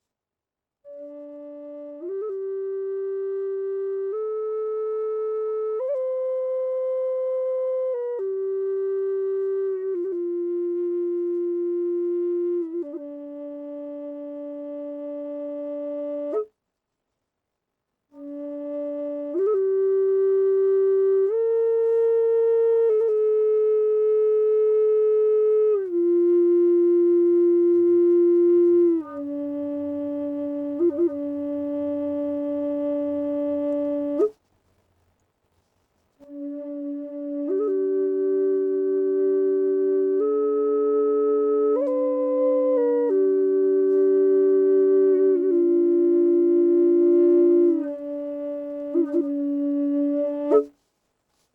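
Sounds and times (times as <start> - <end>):
cedar Native American flute playing D without reverb: 0.8 - 16.6, 18.1 - 34.4, 36.1 - 51.5.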